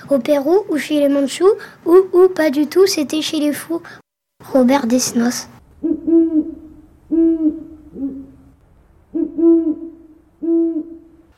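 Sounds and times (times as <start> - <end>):
speech: 0.1 - 6.0
owl hooting: 5.8 - 11.3.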